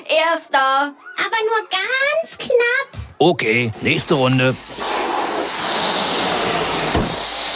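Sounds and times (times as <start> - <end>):
speech: 0.1 - 4.8
deflating balloons whooshing as they fly in a race: 3.7 - 7.5
low flapping sputter of a deflating balloon: 4.6 - 7.5.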